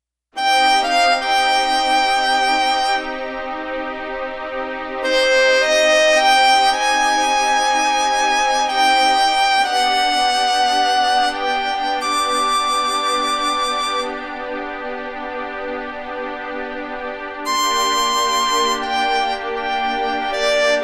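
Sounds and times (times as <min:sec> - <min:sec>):
violin strings: 0:00.4 - 0:20.8.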